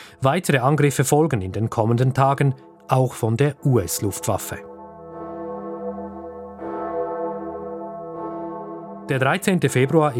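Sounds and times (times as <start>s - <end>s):
speech: 0.2s - 4.7s, 9.1s - 10.1s
church bells ringing: 2.4s - 10.1s.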